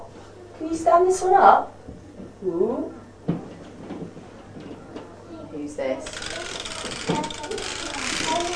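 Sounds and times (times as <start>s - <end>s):
speech: 0.7s - 1.7s, 2.4s - 3.0s, 5.7s - 6.3s
children chattering during a game of skittles: 4.8s - 8.5s
toy caterpillar's wind-up mechanism whirring and clicking: 6.0s - 8.5s.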